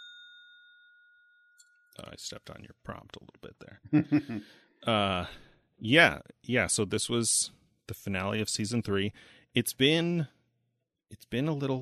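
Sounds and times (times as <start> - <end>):
bright metallic bell ding used as a spoiler warning: 0.0 - 2.0
speech: 2.0 - 10.4, 11.1 - 11.8
laughter: 3.9 - 5.1.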